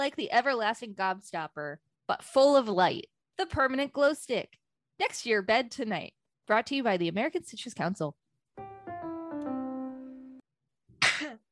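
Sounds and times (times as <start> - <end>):
speech: 0.0 - 8.7
short tonal musical phrase: 8.6 - 10.4.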